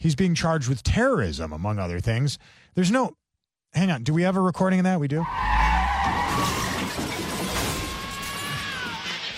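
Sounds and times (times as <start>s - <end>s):
speech: 0.0s - 6.6s
car tires squealing in a skid: 5.2s - 7.5s
car crashing into building: 5.4s - 9.2s
debris clattering: 6.0s - 9.2s.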